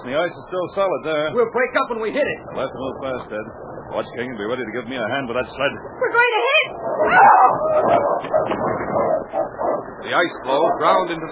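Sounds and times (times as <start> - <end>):
speech: 0.0 - 9.2, 10.0 - 11.3
sled dogs barking, yipping and whining excitedly: 6.4 - 11.0.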